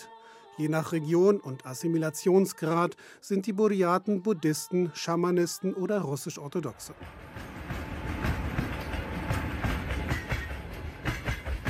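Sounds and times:
speech: 0.6 - 7.5
train on the Trans-Siberian Railway rolling along tracks in Buryat region, Siberia, Russia: 6.9 - 11.6.

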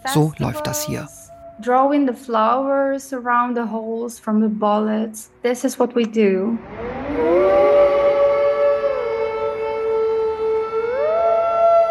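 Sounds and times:
siren wailing: 0.0 - 2.6, 6.4 - 11.8
speech: 0.1 - 7.3.

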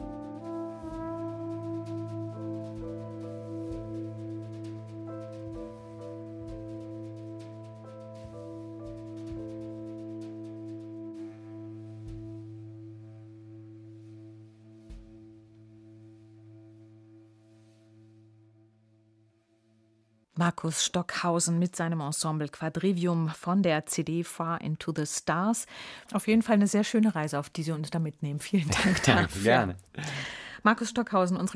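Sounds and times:
mellow jazz ensemble music with long sustained tones: 0.0 - 18.1
steady low bass line: 0.0 - 18.5
speech: 20.4 - 31.5
laughter: 28.7 - 30.2.

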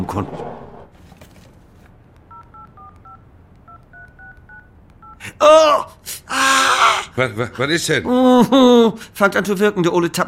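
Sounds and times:
speech: 0.1 - 0.5, 5.4 - 6.0, 7.2 - 10.2
DTMF touch-tone beeps as a phone number is keyed in: 2.3 - 5.2.

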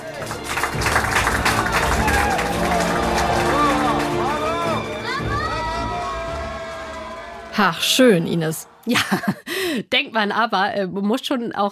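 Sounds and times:
team clapping after solar plane landing in Abu Dhabi: 0.0 - 8.9
excited voices and cheers: 1.4 - 9.0
speech: 7.6 - 11.7
laughter: 8.8 - 9.6.

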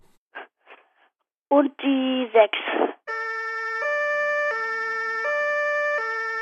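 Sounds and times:
speech: 1.5 - 2.9
police car two-tone siren: 3.1 - 6.4.

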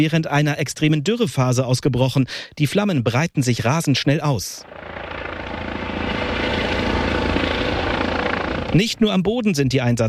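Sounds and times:
speech: 0.0 - 5.0, 8.7 - 10.0
helicopter flying overhead: 4.6 - 9.1.

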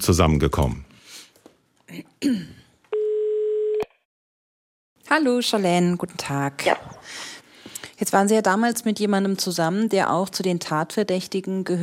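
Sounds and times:
speech: 0.0 - 0.9, 1.9 - 2.6, 5.1 - 7.4, 8.0 - 11.8
telephone ringing tone as a call is placed: 2.9 - 3.9.

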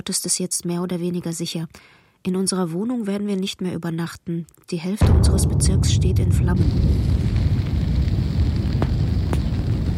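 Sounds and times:
speech: 0.0 - 7.4
explosions: 5.0 - 9.9.

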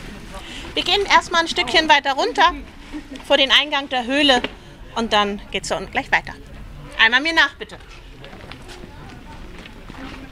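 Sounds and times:
faint murmuring voices: 0.0 - 10.3
steady outdoor hum: 0.0 - 10.3
speech: 0.8 - 8.0
several people's footsteps crunching along a mountain path: 7.8 - 10.3.

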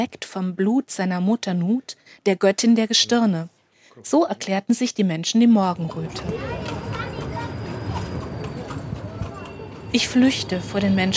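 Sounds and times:
speech: 0.0 - 6.6, 9.9 - 11.1
street noise: 4.8 - 11.1
hooves of a horse pulling a carriage clip-clopping: 5.8 - 11.1.

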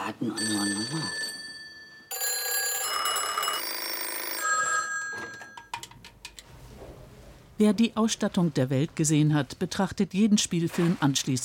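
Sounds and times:
speech: 0.1 - 1.2, 7.6 - 11.4
mechanical bell of a 1970s or 1980s telephone film prop ringing: 0.3 - 5.7.

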